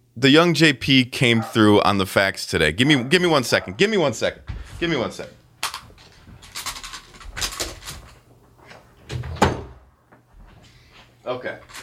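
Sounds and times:
speech: 0.2 - 5.4, 11.3 - 11.8
door being pushed shut: 5.7 - 9.9.

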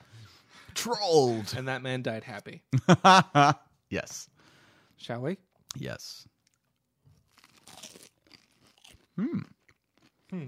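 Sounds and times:
speech: 0.8 - 4.3, 5.0 - 6.3, 9.2 - 9.5
person biting and chewing a crunchy snack: 7.2 - 10.4.

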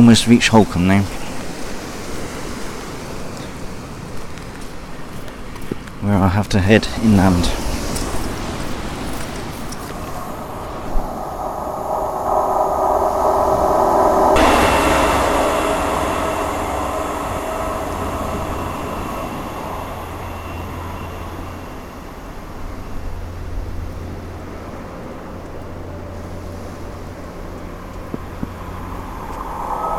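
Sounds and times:
speech: 0.0 - 1.2, 6.1 - 7.6
two trains passing: 6.8 - 29.9.

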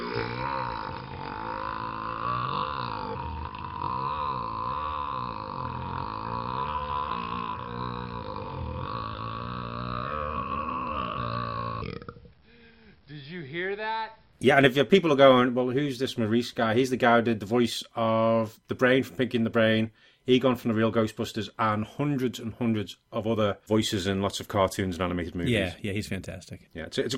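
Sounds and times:
long loud belch wavering in pitch: 0.0 - 12.3
speech: 14.4 - 27.1.

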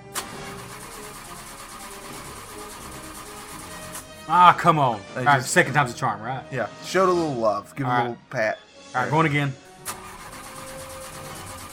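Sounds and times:
vehicle ignition click: 0.0 - 0.9, 9.8 - 11.7
vehicle engine cranking as the ignition is turned: 0.0 - 4.3, 9.7 - 11.7
speech: 4.3 - 9.6.

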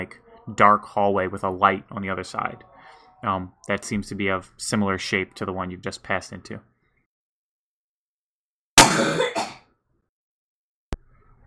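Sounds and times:
speech: 0.0 - 6.7
loud harsh cough: 8.8 - 9.7.

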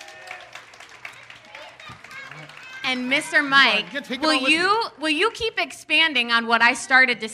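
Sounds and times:
crowd clapping: 0.0 - 4.7
speech: 1.9 - 7.3.

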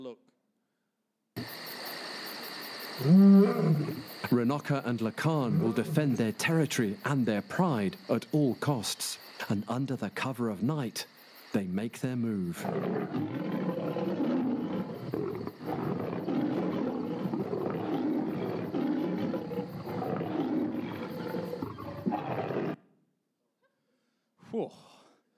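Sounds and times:
speech: 0.0 - 0.3, 3.0 - 13.7
lions roaring at night: 3.0 - 4.1, 5.2 - 6.3, 12.5 - 22.8
lion growling: 3.0 - 6.5, 12.3 - 22.8.

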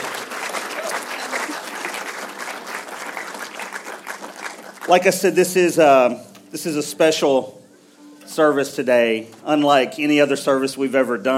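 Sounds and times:
crowd applauding: 0.0 - 5.7
speech: 4.9 - 7.6, 8.3 - 11.3.

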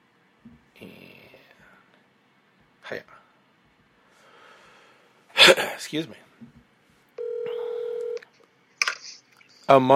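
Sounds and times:
speech: 2.9 - 3.2, 5.5 - 6.6, 9.7 - 9.9
telephone dialing tone: 7.2 - 8.2.

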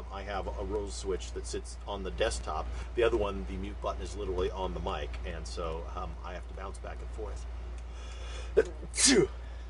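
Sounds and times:
speech: 0.2 - 7.6, 8.6 - 9.4
sneeze: 9.0 - 9.4.

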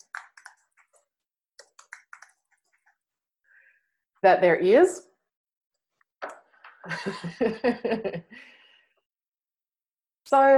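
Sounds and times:
typing on a noisy computer keyboard: 1.6 - 2.9
speech: 4.2 - 5.1, 7.0 - 8.6, 10.3 - 10.5.

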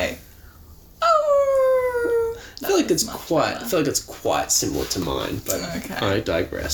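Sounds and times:
person imitating a werewolf howl: 1.0 - 2.4
speech: 2.9 - 6.7.

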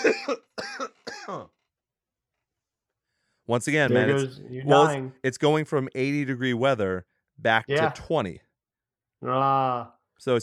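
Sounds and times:
harsh coughs: 0.0 - 1.5
speech: 3.5 - 8.4, 9.2 - 10.4.

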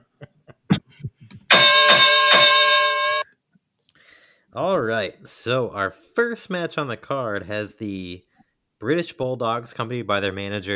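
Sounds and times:
wrestling ring bell clanging: 1.5 - 3.2
speech: 4.6 - 10.7.

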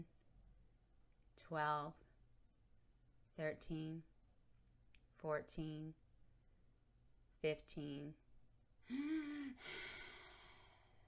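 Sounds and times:
speech: 1.4 - 2.0, 3.4 - 4.1, 5.2 - 6.0, 7.4 - 8.2, 8.9 - 9.9
slow breathing of a sleeper: 8.9 - 11.0.

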